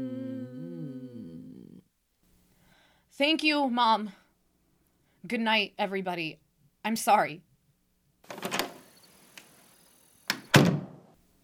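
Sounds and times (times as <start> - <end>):
speech: 3.2 - 4.2, 5.2 - 7.5
door swinging shut with a soft latch click and thud: 8.3 - 8.9, 10.3 - 11.0.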